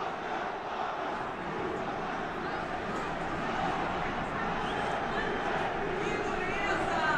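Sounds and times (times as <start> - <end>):
large stadium crowd shouting and jeering in protest after defeat: 0.0 - 7.1.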